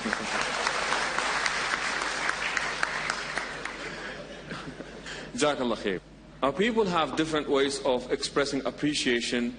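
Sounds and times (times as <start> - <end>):
room full of people clapping: 0.0 - 4.3
speech: 5.4 - 9.5.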